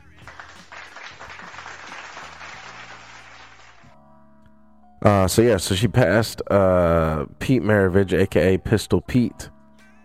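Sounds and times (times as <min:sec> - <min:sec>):
people cheering: 0:00.0 - 0:03.9
crowd applauding: 0:00.0 - 0:04.0
speech: 0:05.0 - 0:09.6.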